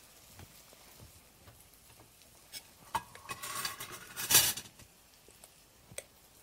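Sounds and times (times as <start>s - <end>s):
plates and utensils clinking while serving cooked eggplant: 2.5s - 4.8s.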